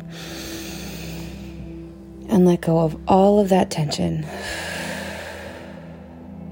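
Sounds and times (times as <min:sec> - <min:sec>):
deep breath in through nose and out through mouth: 0:00.0 - 0:02.2, 0:04.2 - 0:06.5
speech: 0:02.4 - 0:04.7.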